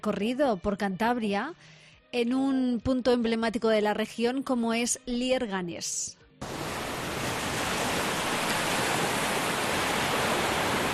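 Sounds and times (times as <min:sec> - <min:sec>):
speech: 0:00.0 - 0:06.6
hiss of heavy rain or rough sea churning in Cantabria Spain: 0:06.4 - 0:10.9.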